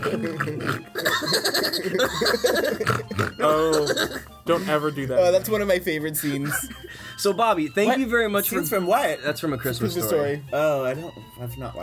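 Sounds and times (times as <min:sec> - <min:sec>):
person imitating a pig eating with wet snorting and grunting: 0:00.0 - 0:04.3
laughter: 0:00.0 - 0:04.8, 0:06.1 - 0:07.0
speech: 0:00.1 - 0:11.8.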